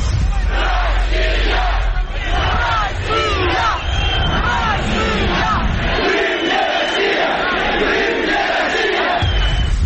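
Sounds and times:
large protest crowd shouting slogans at a rally outside the Supreme Council of Crimea: 0.2 - 9.7.

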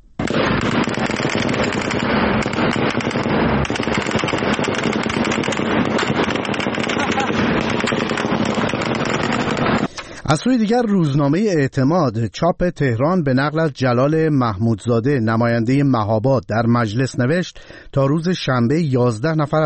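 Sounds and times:
rapid dense gunfire at protesters: 0.2 - 9.9
speech: 10.3 - 19.6.

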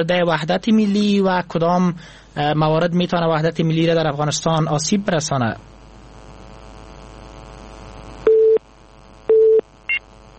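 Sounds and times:
speech: 0.0 - 5.7
telephone busy signal after a cut-off listener call: 8.3 - 8.6, 9.3 - 10.0.

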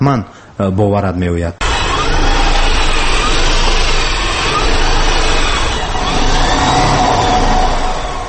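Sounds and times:
speech: 0.0 - 1.6
road noise: 1.6 - 8.2
small student-built electric car whirring: 1.6 - 8.2.

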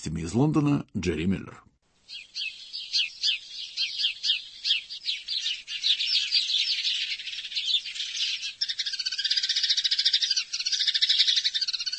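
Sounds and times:
speech: 0.0 - 2.5
sparrow chirping: 2.0 - 11.9.

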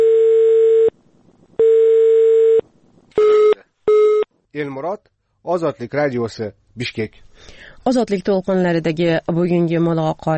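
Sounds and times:
telephone line tone after the far end hung up: 0.0 - 0.9, 1.6 - 2.6, 3.2 - 4.3
speech: 4.6 - 10.3.

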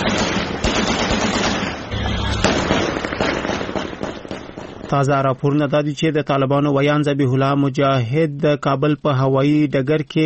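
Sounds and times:
celebratory gunfire at night: 0.0 - 5.4
fireworks at night: 0.0 - 5.7
speech: 4.9 - 10.2.

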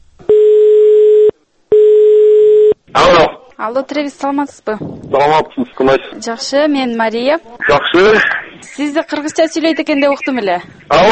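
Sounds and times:
telephone ringback tone while placing a call: 0.3 - 2.8
speech: 3.6 - 11.1.

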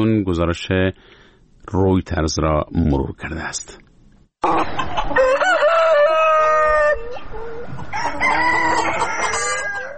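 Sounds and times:
speech: 0.0 - 3.8, 4.4 - 5.4
hens clucking on a poultry farm in Estonia: 4.4 - 9.9
rooster crowing on a poultry farm in Estonia: 4.5 - 9.9.

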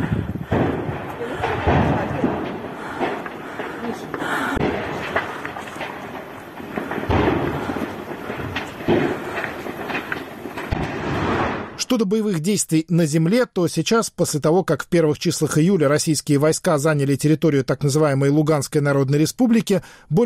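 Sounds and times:
heavy rumbling secondary explosions of ammunition: 0.0 - 11.9
faint indistinct voices: 0.8 - 6.2
speech: 11.9 - 20.2.

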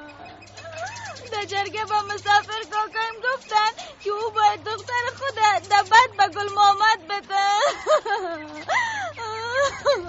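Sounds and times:
laughter: 0.3 - 10.0
speech: 1.4 - 10.0
person crying: 7.4 - 10.0.

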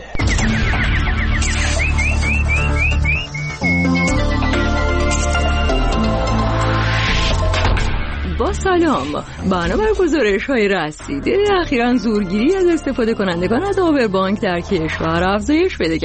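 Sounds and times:
nightingale singing: 0.0 - 6.0
dense steady musical backing: 0.2 - 16.0
speech: 8.6 - 16.0.

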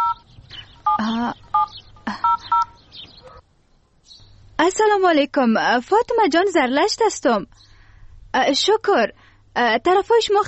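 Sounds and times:
touch-tone telephone number being dialed: 0.0 - 0.2, 0.9 - 2.8
speech: 1.0 - 1.4, 4.8 - 7.7, 8.4 - 10.4.

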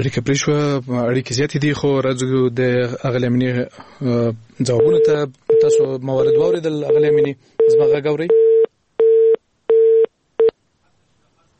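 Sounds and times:
speech: 0.0 - 8.4
busy tone after a dropped phone call: 4.8 - 10.5.

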